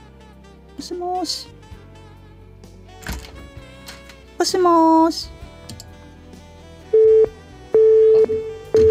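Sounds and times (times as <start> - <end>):
speech: 0.8 - 1.6, 4.4 - 5.4
telephone busy signal from a call that fails to connect: 7.0 - 8.8.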